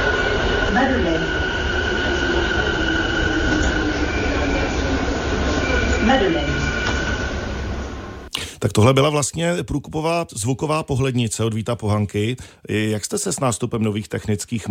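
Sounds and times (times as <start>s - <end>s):
quieter new metro train pulling into a terminus with rumble and electric whine: 0.0s - 8.3s
speech: 0.7s - 1.4s, 8.6s - 14.6s.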